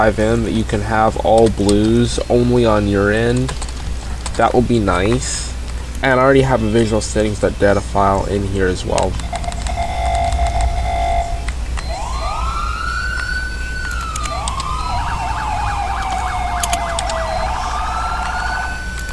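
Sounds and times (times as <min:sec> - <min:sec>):
speech: 0:00.0 - 0:03.7, 0:04.4 - 0:09.4
low constant rumble: 0:00.0 - 0:19.1
custom emergency vehicle siren wailing and yelping: 0:09.2 - 0:19.1.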